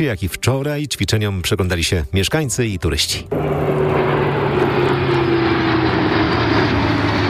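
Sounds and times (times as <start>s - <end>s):
speech: 0.0s - 4.7s
military aircraft engine drone overhead: 3.1s - 7.2s.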